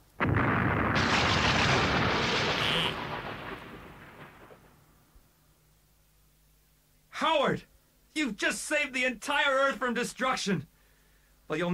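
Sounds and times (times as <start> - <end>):
blast from a fictional neutron disintegrator weapon: 0.2 - 4.8
speech: 8.2 - 10.7, 11.5 - 11.7.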